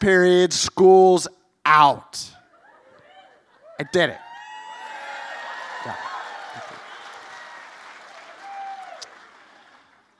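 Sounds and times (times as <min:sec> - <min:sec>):
speech: 0:00.0 - 0:02.4, 0:03.8 - 0:04.3, 0:05.8 - 0:06.1
crowd cheering with voices: 0:02.6 - 0:10.1
dense wash of crowd clapping: 0:04.7 - 0:10.1.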